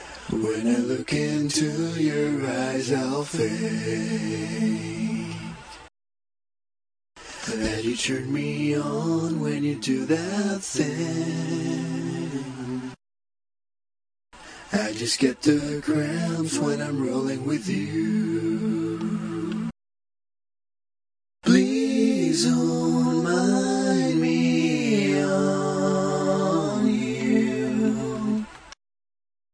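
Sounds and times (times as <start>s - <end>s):
man singing a cappella: 0.3s - 5.6s, 7.4s - 13.0s, 14.7s - 19.7s, 21.4s - 28.5s.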